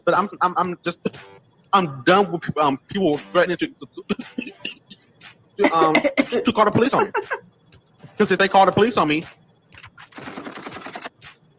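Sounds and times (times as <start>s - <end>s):
speech: 0.0s - 4.8s, 5.6s - 7.5s, 8.2s - 9.4s
laughter: 3.8s - 5.0s, 5.6s - 7.4s
rapid gunfire burst: 10.0s - 11.4s.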